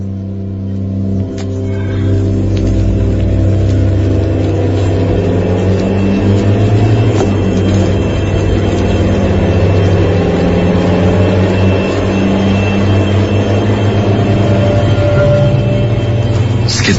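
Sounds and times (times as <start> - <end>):
car engine running as a car arrives and drives off: 0.0 - 16.9.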